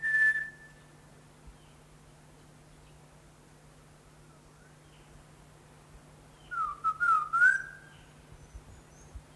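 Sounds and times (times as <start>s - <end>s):
Greater ground-robin calling clear rising and falling whistles: 0.0s - 0.8s, 6.4s - 8.0s.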